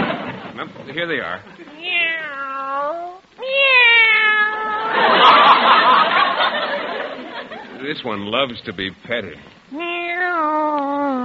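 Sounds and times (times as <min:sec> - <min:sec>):
laughter: 0:00.0 - 0:01.8, 0:04.8 - 0:08.0
speech: 0:00.6 - 0:03.7, 0:07.8 - 0:11.0
cat meowing: 0:01.7 - 0:05.0, 0:09.7 - 0:11.2.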